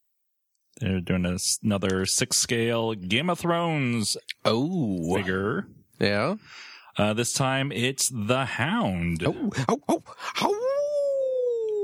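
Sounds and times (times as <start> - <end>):
speech: 0.8 - 10.7
person imitating a dog with yelping barks: 5.0 - 5.6, 9.3 - 11.8
person imitating a dog howling: 10.3 - 11.8.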